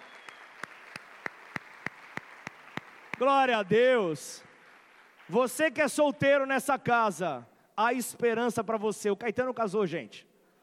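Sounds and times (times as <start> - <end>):
audience clapping in unison: 0.0 - 5.9
speech: 3.2 - 4.5, 5.3 - 10.3.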